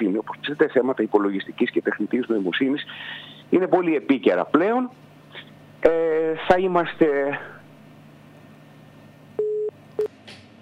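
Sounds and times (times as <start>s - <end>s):
speech: 0.2s - 5.0s, 5.8s - 7.5s
telephone busy tone after a dropped call: 9.4s - 9.7s.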